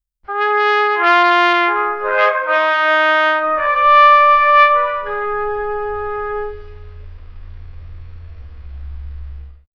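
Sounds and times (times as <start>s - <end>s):
royal trumpet: 0.3s - 7.2s.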